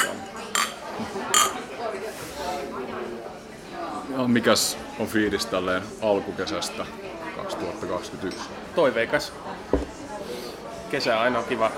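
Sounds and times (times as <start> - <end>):
glasses clinking in a toast: 0.0 - 1.7
murmur of chatter: 0.0 - 11.7
speech: 3.8 - 9.8, 10.9 - 11.7.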